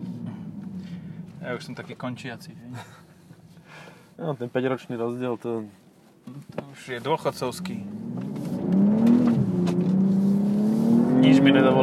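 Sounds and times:
car engine revving through its exhaust: 0:00.0 - 0:02.0, 0:07.2 - 0:11.8
speech: 0:01.4 - 0:03.0, 0:04.2 - 0:08.0, 0:11.2 - 0:11.8.

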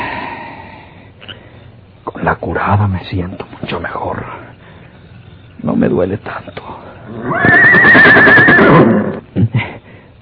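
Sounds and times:
speech: 0:02.3 - 0:04.4, 0:05.6 - 0:08.9
horse neighing: 0:07.0 - 0:09.2.

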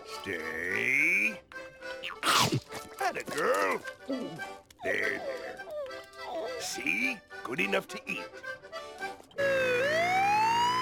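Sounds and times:
speech: 0:00.2 - 0:01.0, 0:02.1 - 0:05.7, 0:06.6 - 0:08.3
ambulance siren wailing: 0:09.4 - 0:10.8.

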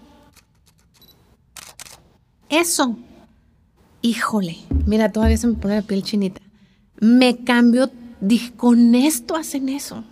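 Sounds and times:
camera shutter clicking: 0:00.4 - 0:02.0
speech: 0:02.5 - 0:03.1, 0:04.0 - 0:06.4, 0:07.0 - 0:10.1.

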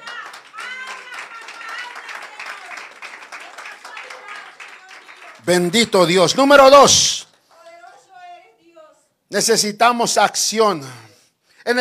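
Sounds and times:
large audience applauding: 0:00.0 - 0:06.6
many voices calling out and cheering: 0:00.0 - 0:07.0
speech: 0:05.4 - 0:07.2, 0:09.4 - 0:11.7.

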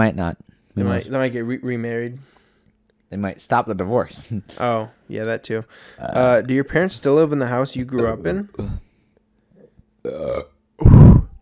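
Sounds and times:
speech: 0:00.0 - 0:02.4, 0:03.1 - 0:08.8, 0:10.0 - 0:11.1
person burping into the microphone: 0:06.0 - 0:06.4, 0:08.6 - 0:08.8, 0:10.0 - 0:11.4.

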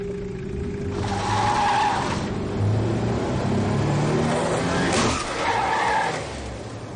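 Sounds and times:
car engine roaring: 0:00.0 - 0:06.9
car tires skidding and screeching: 0:00.9 - 0:02.4, 0:04.1 - 0:06.6.

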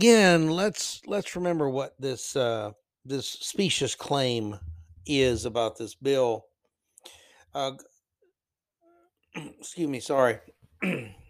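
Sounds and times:
speech: 0:00.0 - 0:07.9, 0:09.4 - 0:11.2
person clearing a tickle from their throat: 0:09.4 - 0:09.7, 0:10.8 - 0:11.2.

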